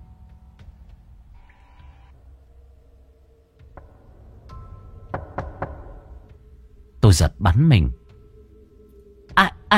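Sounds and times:
dry knocking on a door: 0:03.6 - 0:06.4
speech: 0:07.1 - 0:08.0, 0:09.4 - 0:09.7.

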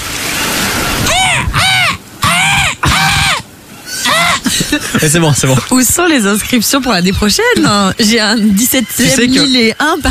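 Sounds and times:
person imitating a seagull's cry: 0:01.1 - 0:03.4
laughter: 0:04.0 - 0:05.7
speech: 0:05.0 - 0:10.0.

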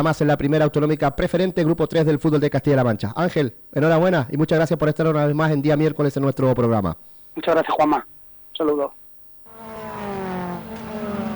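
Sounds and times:
speech: 0:00.0 - 0:09.0
car engines roaring at a night autocross race: 0:09.5 - 0:11.3.

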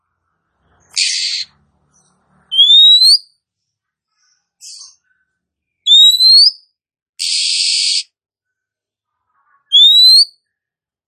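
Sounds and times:
female oriental magpie-robin calling: 0:00.9 - 0:03.3, 0:05.9 - 0:06.6, 0:07.2 - 0:08.1, 0:09.7 - 0:10.3.

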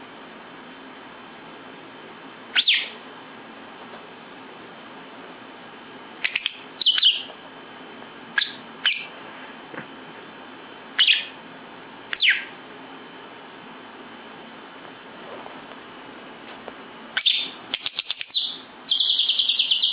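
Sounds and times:
lovebird producing shrill chirps and short squeaky notes: 0:02.5 - 0:03.0, 0:06.2 - 0:07.3, 0:08.4 - 0:09.1, 0:11.0 - 0:11.4, 0:12.2 - 0:12.5, 0:17.2 - 0:19.9.

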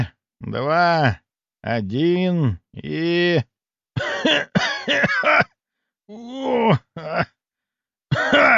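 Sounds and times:
speech: 0:00.0 - 0:05.5, 0:06.1 - 0:07.3
old man coughing and groaning after an antidote injection: 0:04.0 - 0:07.4, 0:08.1 - 0:08.5.

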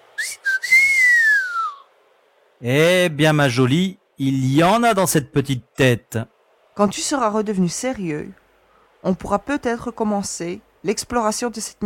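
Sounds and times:
young man giving an admiring whistle: 0:00.2 - 0:01.9
speech: 0:02.6 - 0:08.4, 0:09.0 - 0:11.8.

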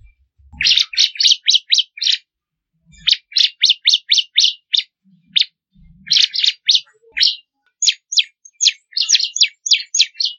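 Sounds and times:
faint low thumps: 0:00.0 - 0:00.8
Bar-winged prinia song with fast high trills: 0:00.0 - 0:02.3, 0:02.9 - 0:10.3.

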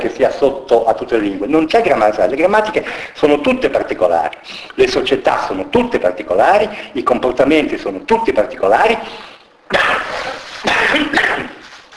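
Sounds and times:
speech: 0:00.0 - 0:11.4
man coughing while giving a lecture on cultural anthropology: 0:09.7 - 0:11.6.

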